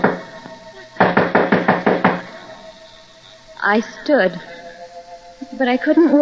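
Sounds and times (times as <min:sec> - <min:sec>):
firm knocks on a wooden door: 0:01.0 - 0:02.3
speech: 0:03.6 - 0:04.5, 0:05.4 - 0:06.2.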